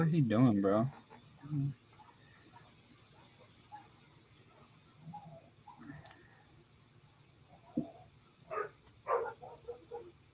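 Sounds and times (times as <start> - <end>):
speech: 0.0 - 1.8
dogs barking and yapping: 0.9 - 6.0, 7.5 - 10.3.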